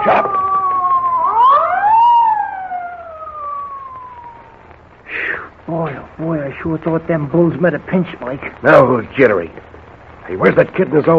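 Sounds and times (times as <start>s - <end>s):
police car siren wailing: 0.0s - 4.7s
speech: 6.6s - 9.7s, 10.3s - 11.1s.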